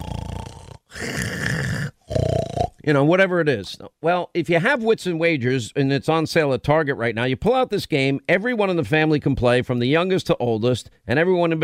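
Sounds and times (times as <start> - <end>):
man snoring: 0.0 - 2.8
speech: 2.9 - 11.6.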